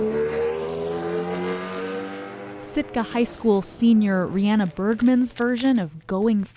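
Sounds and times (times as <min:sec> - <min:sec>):
race car engine roaring at speedway: 0:00.0 - 0:05.1
speech: 0:02.8 - 0:06.5.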